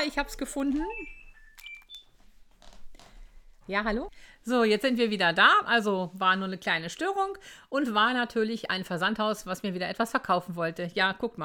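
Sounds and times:
speech: 0.0 - 1.2, 3.7 - 11.4
telephone ringing with high electronic tones: 0.7 - 2.2.

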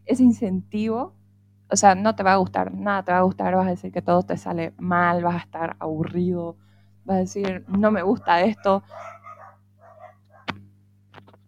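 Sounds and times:
steady low hum: 0.0 - 11.1
speech: 0.1 - 9.2
small dogs barking: 7.8 - 10.6.

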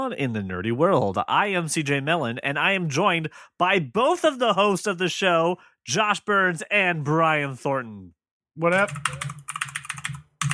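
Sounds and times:
speech: 0.0 - 9.6
mechanical keyboard typing: 8.7 - 10.5.

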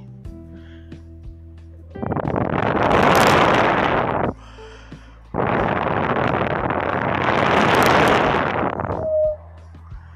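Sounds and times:
howling hurricane storm winds: 2.1 - 4.3, 5.4 - 9.4.

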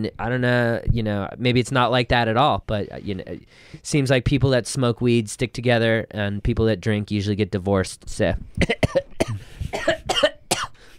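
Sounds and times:
speech: 0.0 - 10.3
person coughing with harsh rasping breaths: 8.6 - 10.8.

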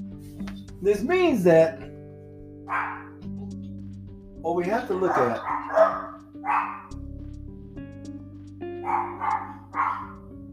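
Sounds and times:
speech: 0.8 - 1.8, 2.7 - 3.1, 4.4 - 6.9, 8.8 - 10.0
dog barking: 2.7 - 3.2, 4.9 - 6.9, 8.8 - 10.3.

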